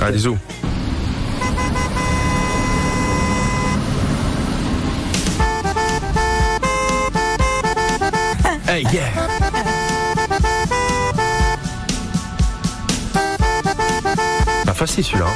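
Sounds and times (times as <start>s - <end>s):
speech: 0.0s - 0.6s, 8.7s - 9.7s, 14.8s - 15.3s
steady rumble of traffic: 0.6s - 15.3s
car horn playing a melody of tuned blasts: 1.3s - 3.8s, 5.4s - 8.4s, 9.2s - 15.3s.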